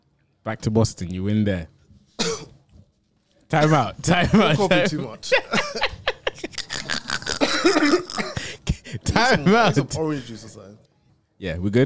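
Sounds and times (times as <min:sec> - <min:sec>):
speech: 0:00.4 - 0:01.8, 0:03.5 - 0:05.6, 0:07.6 - 0:08.4, 0:09.2 - 0:11.8
person coughing and throat-clearing: 0:02.2 - 0:02.5, 0:06.6 - 0:09.3
laughter: 0:03.6 - 0:10.3.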